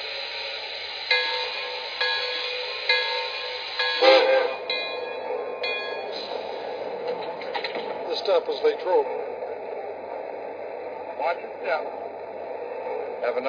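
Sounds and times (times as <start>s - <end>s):
hiss of air: 0.0s - 4.5s
passenger train idling at a station platform: 0.0s - 13.4s
speech: 8.4s - 9.4s, 11.2s - 12.1s, 13.2s - 13.4s.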